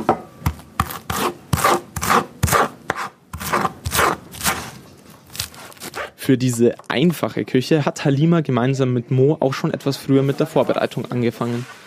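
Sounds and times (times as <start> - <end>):
knife chopping vegetables on a wooden board: 0.0 - 6.1
knife scraping and rubbing on a wooden board: 0.8 - 6.2
speech: 6.3 - 11.8.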